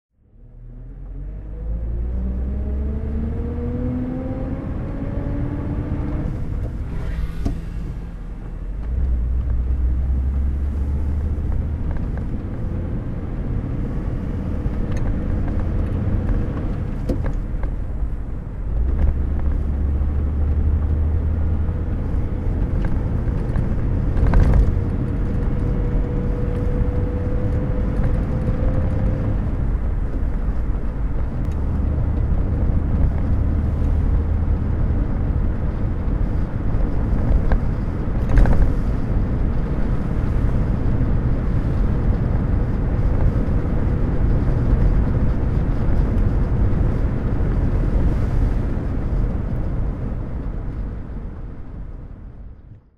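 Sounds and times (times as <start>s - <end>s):
1950 Bentley Mk VI Drophead Coupe driving: 0.2s - 52.9s.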